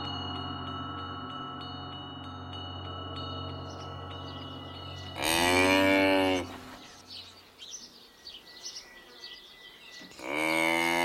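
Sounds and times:
faint high insect-like chirping: 0.1 - 10.3
cow mooing: 5.0 - 7.0, 10.1 - 11.0.

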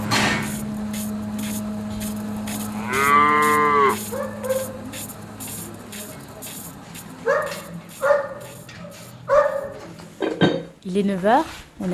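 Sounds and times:
mechanical hum of milking equipment: 0.0 - 10.4
dairy cows mooing inside a barn at morning milking: 2.5 - 4.6
dog barking: 4.1 - 4.8, 7.2 - 8.6, 9.3 - 9.9
speech: 11.0 - 11.9.

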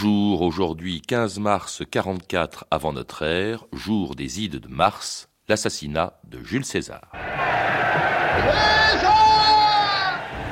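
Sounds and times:
speech: 0.0 - 9.4
dense crowd shouting a name: 7.2 - 10.5.

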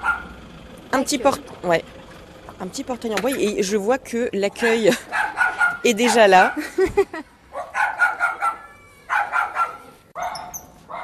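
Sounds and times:
animal shelter mascot dogs barking and yipping in reception area: 0.0 - 0.4, 4.6 - 6.8, 7.5 - 11.0
speech: 0.9 - 2.0, 2.6 - 7.3.

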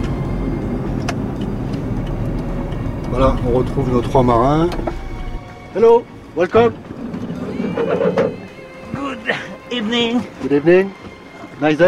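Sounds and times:
road traffic with trucks in a port area: 0.0 - 11.8
speech: 3.2 - 4.9, 5.8 - 6.9, 9.8 - 11.0, 11.6 - 11.8.

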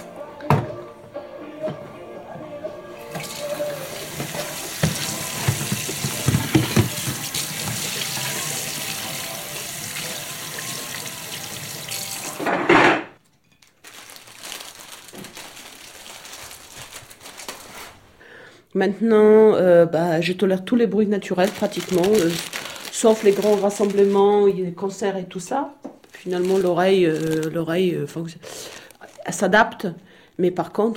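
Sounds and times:
faint kitchen sounds: 0.0 - 29.9
kitchen tap running while coffee is being made: 3.1 - 12.7
speech: 18.8 - 28.6, 29.3 - 30.9.

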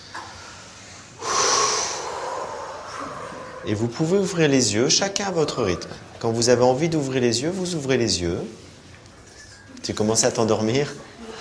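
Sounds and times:
deep breath drawn in through the nose during guided relaxation: 0.4 - 3.6
speech: 3.6 - 8.6, 9.9 - 11.1.

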